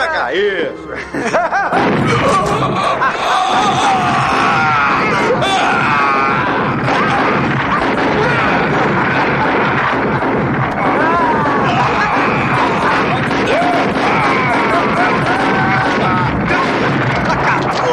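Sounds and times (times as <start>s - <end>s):
speech: 0.3s - 3.8s
laughter: 0.7s - 17.9s
pained groaning voices: 0.9s - 17.9s
barrage of rapid gunshots in film scene: 1.7s - 17.9s
strained shouts: 1.8s - 17.9s.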